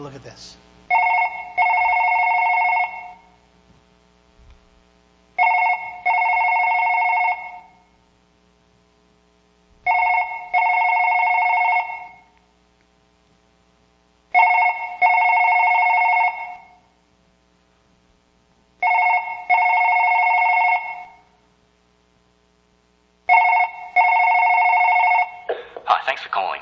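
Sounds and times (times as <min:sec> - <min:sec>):
speech: 0:00.0 - 0:00.7
telephone ringing: 0:00.9 - 0:03.4, 0:05.4 - 0:07.9, 0:09.9 - 0:12.3, 0:14.3 - 0:16.9, 0:18.8 - 0:21.3, 0:23.3 - 0:26.2.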